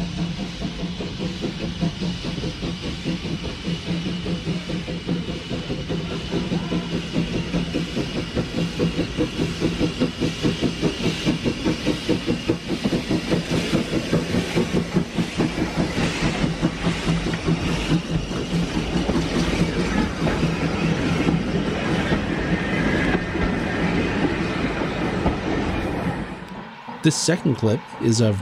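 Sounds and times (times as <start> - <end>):
1890 Manning Wardle steam locomotive running on rails: 0.0 - 28.3
speech: 27.1 - 28.3.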